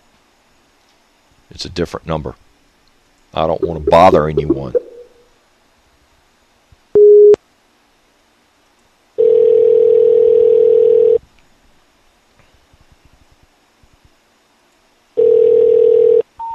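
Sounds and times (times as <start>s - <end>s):
speech: 1.5s - 2.4s, 3.3s - 4.8s
telephone ringback tones calling a disconnected number: 9.2s - 11.2s, 15.2s - 16.5s.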